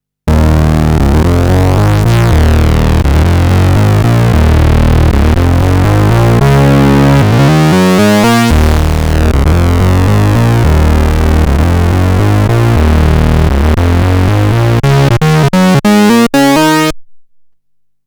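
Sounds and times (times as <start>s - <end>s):
fat riff: 0.3s - 17.0s.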